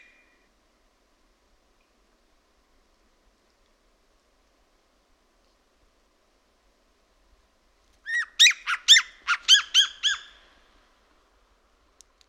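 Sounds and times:
Siberian jay calling: 0:08.1 - 0:10.5.

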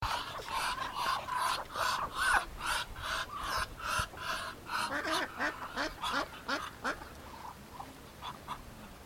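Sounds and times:
Muscovy duck: 0:00.0 - 0:09.0.

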